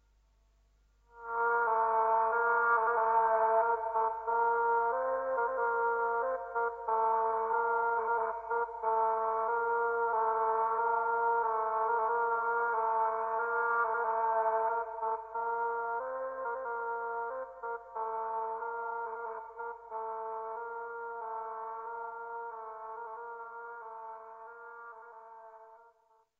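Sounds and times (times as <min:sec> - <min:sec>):
castrated oboe melody filtered with reverb: 0:01.1 - 0:26.2.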